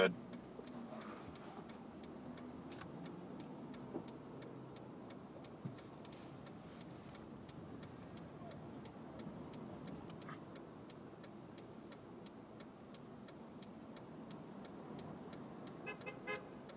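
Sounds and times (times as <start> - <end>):
speech: 0.0 - 0.2
street traffic rumbling: 0.0 - 16.7
car horn honking in street traffic: 15.8 - 16.6.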